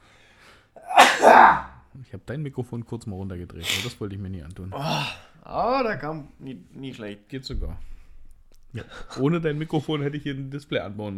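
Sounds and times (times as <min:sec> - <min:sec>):
sneeze: 0:00.8 - 0:01.7
speech: 0:02.1 - 0:07.9, 0:08.7 - 0:11.1.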